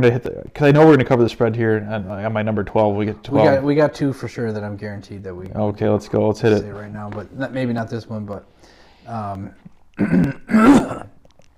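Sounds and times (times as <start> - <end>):
speech: 0.0 - 11.1
person coughing from pumpkin seeds caught in the throat: 10.0 - 11.2
throat clearing from pumpkin seeds caught in the throat: 10.0 - 11.2.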